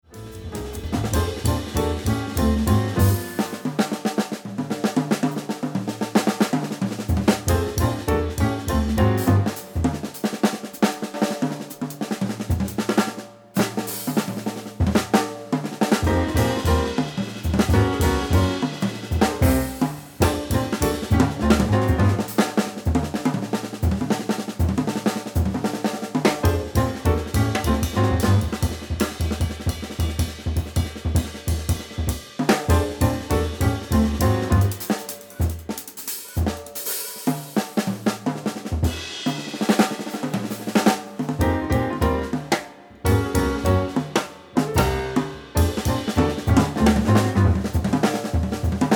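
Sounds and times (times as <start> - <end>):
drum solo: 0.0 - 48.9.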